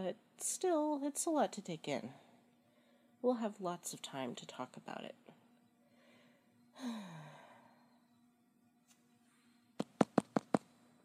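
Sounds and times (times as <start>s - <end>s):
speech: 0.0s - 2.2s, 3.2s - 5.3s, 6.8s - 7.2s
long breathy sigh: 6.8s - 7.7s.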